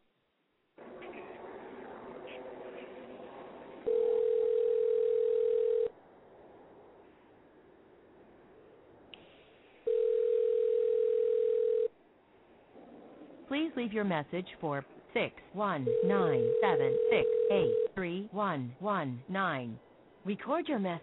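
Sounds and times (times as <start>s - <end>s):
ringback tones of an outgoing phone call: 3.9s - 5.9s, 9.9s - 11.9s, 15.9s - 17.9s
speech: 13.8s - 21.0s.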